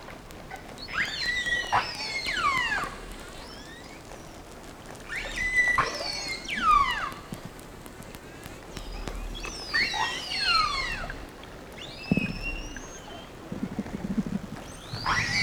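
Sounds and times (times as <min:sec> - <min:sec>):
quiet clicking: 0:00.0 - 0:15.4
whale calls of sweeping squeals and whistles: 0:00.0 - 0:15.4.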